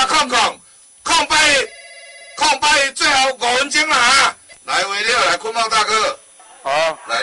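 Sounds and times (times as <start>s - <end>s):
speech: 0.2s - 0.6s, 2.6s - 7.2s
telephone ringing: 1.3s - 3.3s.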